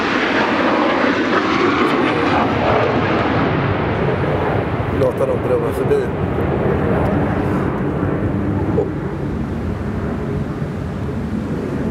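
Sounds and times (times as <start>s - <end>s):
fighter jet aircraft flying directly overhead: 0.0s - 11.8s.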